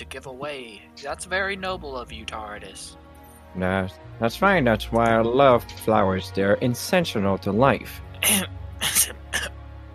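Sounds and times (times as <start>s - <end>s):
speech: 0.0s - 3.0s, 3.6s - 9.5s
person coughing: 8.2s - 9.5s.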